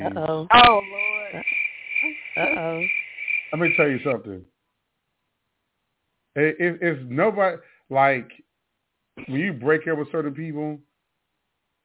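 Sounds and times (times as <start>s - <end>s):
low voice murmurs: 0.0s - 0.4s, 3.6s - 4.4s, 6.4s - 8.3s, 9.2s - 10.3s
speech: 0.0s - 1.6s, 2.4s - 4.6s, 6.4s - 8.4s, 9.2s - 10.9s
crickets chirping: 0.5s - 4.3s.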